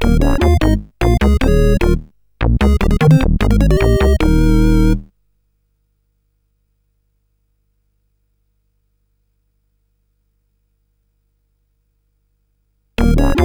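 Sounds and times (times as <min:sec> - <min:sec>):
game music on a SID CSG8580R5 chip: 0:00.0 - 0:05.1, 0:13.0 - 0:13.4.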